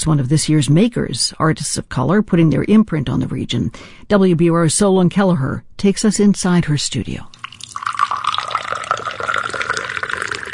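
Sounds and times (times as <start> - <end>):
speech: 0.0 - 7.3
tea pouring into a cup: 7.3 - 10.5.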